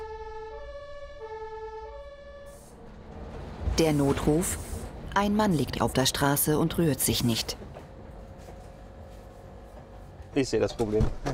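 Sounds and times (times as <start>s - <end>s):
ambulance siren wailing with two-tone pitch: 0.0s - 3.1s
low rumble of a moving vehicle: 2.2s - 11.3s
speech: 3.8s - 7.6s, 10.4s - 11.3s.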